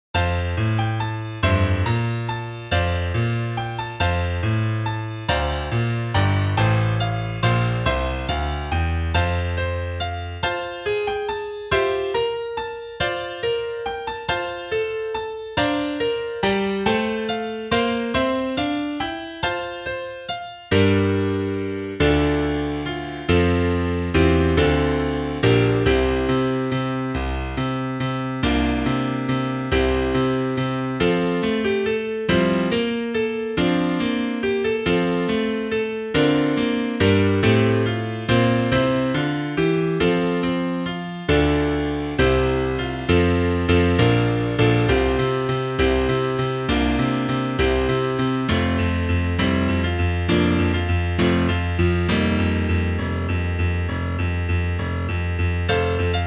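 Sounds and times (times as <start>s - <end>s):
piano piece: 0.0s - 56.2s.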